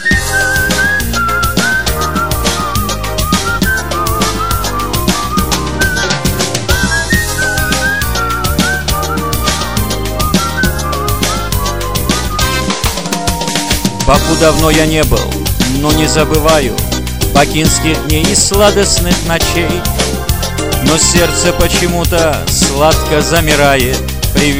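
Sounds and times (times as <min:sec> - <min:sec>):
person whistling a bright lilting melody: 0:00.0 - 0:12.5
loud full band accompaniment with steady drums: 0:00.0 - 0:24.5
speech: 0:14.1 - 0:20.1, 0:20.8 - 0:24.5.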